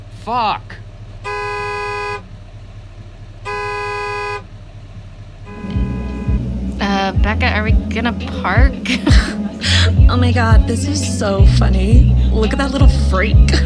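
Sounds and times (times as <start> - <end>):
steady car engine rumble: 0.0 - 13.6
traffic noise: 0.0 - 13.6
speech: 0.2 - 0.8, 7.2 - 13.6
car horn blasts honked at a blocking car: 1.2 - 2.3, 3.4 - 4.6, 5.4 - 6.7
laughter: 8.8 - 9.7.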